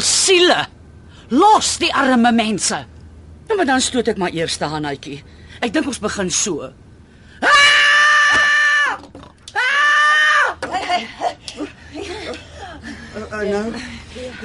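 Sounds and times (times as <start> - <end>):
speech: 0.3 - 2.9, 3.5 - 6.8, 13.4 - 14.4
woman screaming high-pitched: 7.4 - 10.7
laughter: 10.6 - 14.4.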